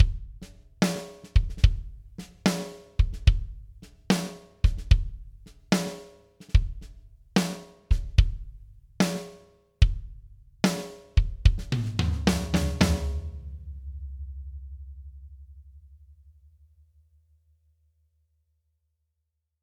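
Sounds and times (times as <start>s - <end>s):
dry kick drum: 0.0s - 0.4s, 1.4s - 2.0s, 3.0s - 3.7s, 4.6s - 5.3s, 6.5s - 6.9s, 7.9s - 8.5s, 9.8s - 10.2s, 11.2s - 12.9s
dry tom drum: 0.0s - 15.7s
dry snare drum: 0.8s - 8.4s, 9.0s - 10.0s, 10.7s - 13.7s.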